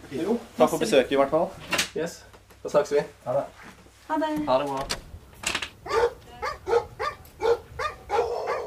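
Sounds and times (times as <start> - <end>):
speech: 0.1 - 5.0
large dogs barking deeply: 5.8 - 8.6.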